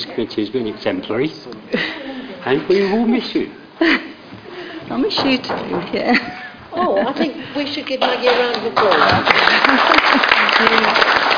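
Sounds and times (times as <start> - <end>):
speech: 0.2 - 4.1, 4.9 - 6.2, 7.1 - 11.2
laughter: 6.0 - 7.6, 9.3 - 10.8
applause from a group at a council committee meeting: 8.0 - 11.3.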